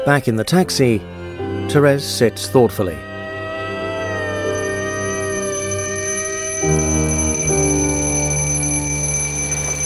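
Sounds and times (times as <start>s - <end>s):
speech: 0.1s - 1.1s, 1.7s - 3.1s
alarm clock ringing in an apartment: 4.0s - 9.8s.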